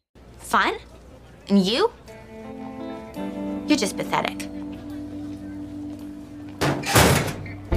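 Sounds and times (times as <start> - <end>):
speech: 0.5 - 0.9, 1.5 - 2.0, 3.7 - 4.5
metal locker door slamming shut with hollow ring: 6.6 - 7.6.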